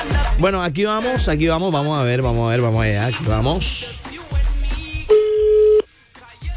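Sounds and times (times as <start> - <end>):
speech: 0.4 - 4.1
telephone ringback tone on a call: 5.1 - 5.8.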